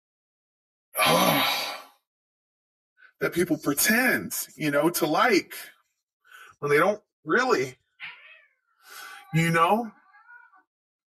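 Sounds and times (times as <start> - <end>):
speech: 3.2 - 5.8, 6.6 - 7.8, 8.9 - 10.0
cat meowing: 8.0 - 10.7.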